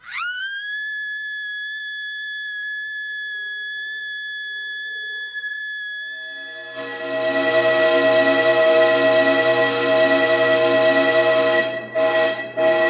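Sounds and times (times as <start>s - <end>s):
scream turning into whistle sound design effect: 0.0s - 12.8s.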